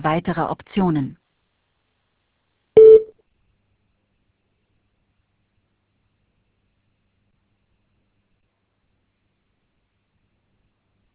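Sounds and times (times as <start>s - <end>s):
speech: 0.0s - 1.2s
voicemail beep tone: 2.8s - 3.1s.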